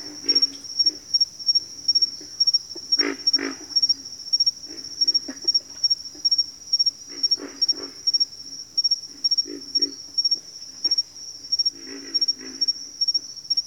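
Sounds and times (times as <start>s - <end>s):
pig frogs grunting in a bayou: 0.0s - 13.6s.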